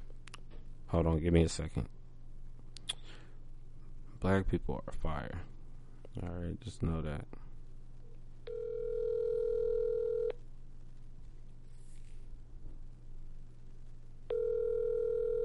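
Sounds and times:
faint low hum: 0.0 - 15.4
speech: 0.9 - 2.0, 4.2 - 5.5, 6.1 - 7.4
outgoing phone call ringback tone: 8.5 - 10.4, 14.3 - 15.4.

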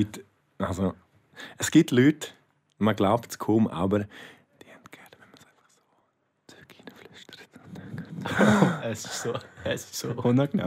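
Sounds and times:
speech: 0.0 - 4.4, 8.2 - 10.6
breathy whispering into a microphone: 4.5 - 8.3
laughter: 8.2 - 10.5.

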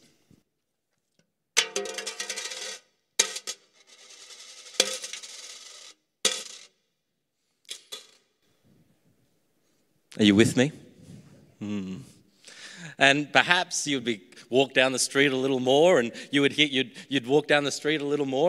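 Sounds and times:
coins dropping into a coffer: 2.0 - 6.7, 7.7 - 8.2
speech: 10.2 - 10.8, 13.0 - 18.4.

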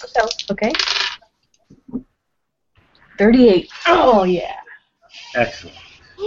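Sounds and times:
speech: 0.0 - 1.0, 3.2 - 4.6, 5.3 - 6.2
dice clattering across a hard surface: 0.1 - 1.2.

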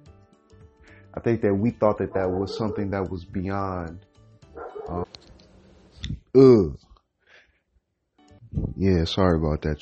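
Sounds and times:
speech: 1.2 - 4.1, 4.9 - 5.3, 6.3 - 6.8, 8.8 - 9.7
dog barking and yipping: 2.1 - 3.1, 4.6 - 5.1.

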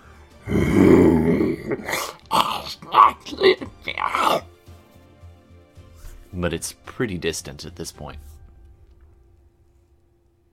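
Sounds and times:
voice imitating a creature roaring with growls, snarls and grunts: 0.4 - 4.5
speech: 6.4 - 8.3.

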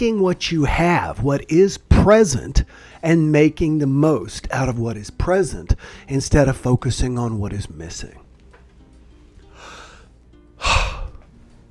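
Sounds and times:
speech: 0.0 - 8.2
person pausing mid-talk to breathe: 2.6 - 3.0, 5.8 - 6.1, 9.4 - 11.3.

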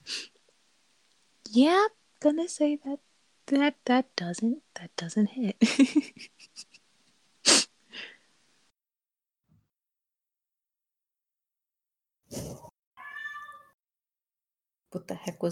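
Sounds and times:
speech: 1.5 - 6.7, 14.9 - 15.5
cat meowing loudly: 13.0 - 13.8.

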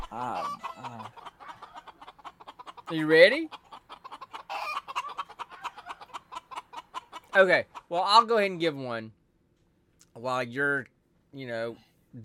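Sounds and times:
chicken clucking: 0.0 - 8.5
speech: 0.1 - 1.0, 2.9 - 3.6, 7.4 - 9.2, 10.2 - 12.2.

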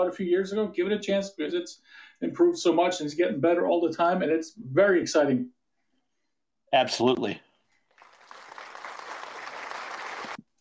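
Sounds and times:
speech: 0.0 - 5.6, 6.7 - 7.5
crowd applause: 7.9 - 10.4.

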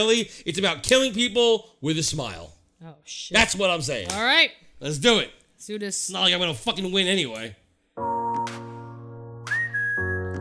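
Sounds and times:
speech: 0.0 - 8.1
person trying to whistle a tune: 9.4 - 10.3.

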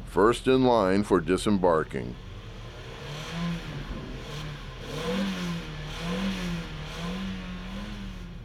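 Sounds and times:
speech: 0.1 - 2.2
large rental truck engine revving and accelerating off a ferry ramp: 2.1 - 8.4.

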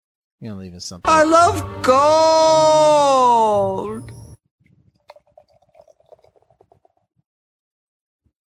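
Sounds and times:
speech: 0.4 - 4.1
Hazy IPA beer pouring frothily into a glass: 5.0 - 7.0.

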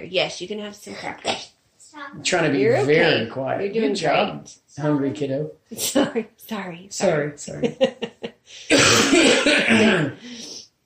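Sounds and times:
speech: 0.0 - 10.3
loud harsh raspy cough into a hand: 8.7 - 10.2.

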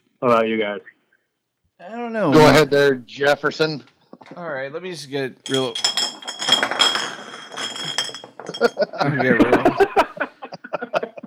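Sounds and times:
speech: 0.2 - 1.0, 1.8 - 6.0, 8.6 - 10.0
glass beer bottles in a homemade castle crashing: 5.4 - 9.2
people chuckling and murmuring: 8.5 - 11.2.

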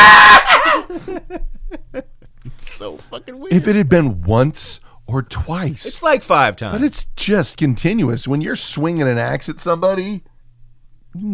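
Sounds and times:
voice imitating hysterical female shrieking: 0.0 - 0.9
laughter: 0.4 - 2.7
speech: 1.0 - 2.1, 2.8 - 10.3, 11.1 - 11.3.

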